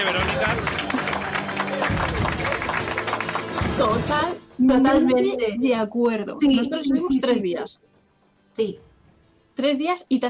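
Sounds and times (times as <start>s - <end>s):
applause from a group: 0.0s - 4.4s
speech: 3.9s - 7.8s, 8.6s - 8.9s, 9.6s - 10.2s.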